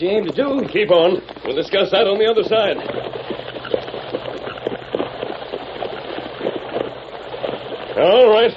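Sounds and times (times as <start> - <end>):
speech: 0.0 - 3.2, 8.0 - 8.5
rushing water of the Rio Grande ford: 0.0 - 8.5.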